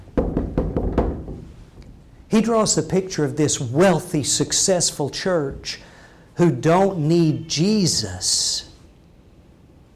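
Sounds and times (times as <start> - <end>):
preacher knocking on a wooden door during a sermon: 0.2 - 1.6
speech: 2.3 - 8.7.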